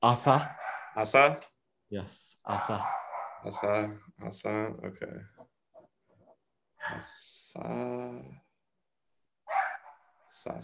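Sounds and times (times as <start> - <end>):
speech: 0.0 - 5.3, 6.9 - 8.4, 10.4 - 10.6
dog barking: 0.4 - 1.0, 2.5 - 3.9, 6.8 - 7.1, 9.5 - 10.1.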